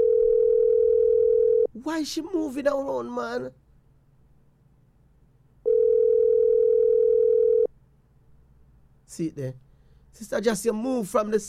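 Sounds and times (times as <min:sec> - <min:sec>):
phone ringing tone: 0:00.0 - 0:01.7, 0:05.6 - 0:07.7
speech: 0:01.8 - 0:03.6, 0:09.1 - 0:11.4.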